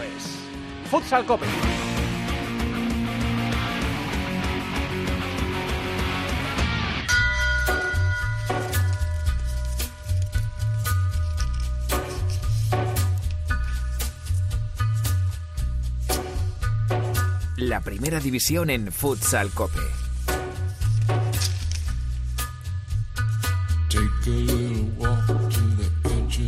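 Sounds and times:
TV theme tune with bouncing bassline and punchy percussion: 0:00.0 - 0:26.3
speech: 0:00.9 - 0:01.7, 0:17.8 - 0:20.0.

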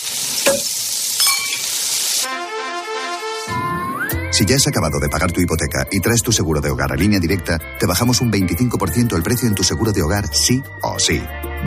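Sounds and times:
T-bone steak sizzling on a grill: 0:00.0 - 0:03.8
speech: 0:04.4 - 0:11.6.

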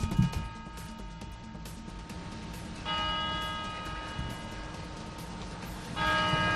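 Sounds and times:
low rumble of city street noise in Madrid: 0:00.0 - 0:06.5
clock tower bell in the Puerta del Sol in Madrid striking: 0:02.8 - 0:04.7, 0:06.0 - 0:06.5.

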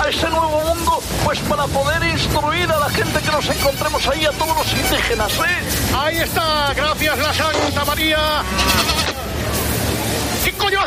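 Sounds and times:
speech: 0:00.2 - 0:09.2, 0:10.4 - 0:10.8
sheep bleating: 0:08.4 - 0:09.2.

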